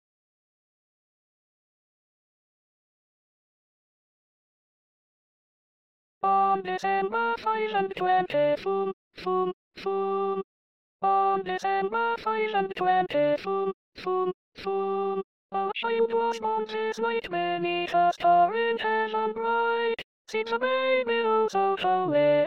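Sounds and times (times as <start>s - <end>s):
alto voice singing an SATB choral part: 6.2s - 10.4s, 11.0s - 22.4s.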